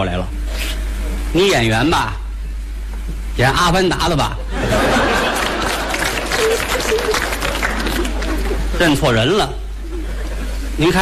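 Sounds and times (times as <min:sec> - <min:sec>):
speech: 0:00.0 - 0:02.2, 0:03.4 - 0:05.0, 0:06.4 - 0:07.3, 0:08.8 - 0:09.6, 0:10.8 - 0:11.0
laughter: 0:04.5 - 0:10.8
theater audience applause: 0:04.7 - 0:09.1.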